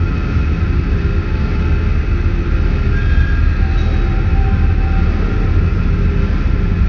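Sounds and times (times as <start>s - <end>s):
industrial noise: 0.0s - 6.8s.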